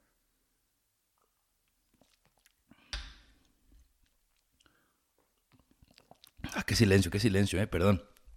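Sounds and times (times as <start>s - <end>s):
mouth clicks and smacks: 1.2s - 6.7s
person sipping tequila: 1.2s - 6.7s
wet gulp: 1.9s - 2.8s, 4.3s - 6.7s
person swallowing tequila: 5.5s - 6.5s
speech: 6.7s - 8.1s.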